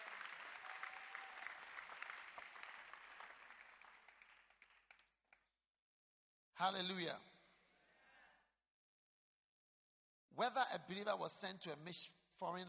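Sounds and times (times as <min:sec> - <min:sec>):
audience clapping: 0:00.0 - 0:05.5
speech: 0:06.6 - 0:07.3, 0:10.4 - 0:12.6.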